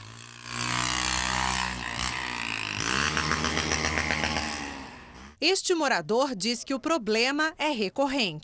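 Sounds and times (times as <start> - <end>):
motorcycle engine revving loudly at night: 0.0 - 5.4
speech: 5.4 - 8.4.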